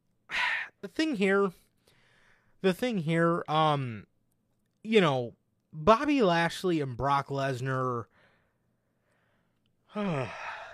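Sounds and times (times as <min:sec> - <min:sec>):
voiced yawn: 0:00.3 - 0:00.8, 0:09.8 - 0:10.7
speech: 0:00.8 - 0:01.6, 0:02.6 - 0:04.1, 0:04.8 - 0:08.1, 0:10.0 - 0:10.5.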